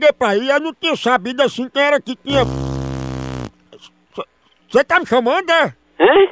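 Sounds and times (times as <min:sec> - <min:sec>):
speech: 0:00.1 - 0:02.6, 0:03.8 - 0:06.2
loud buzzy fart: 0:02.3 - 0:03.6.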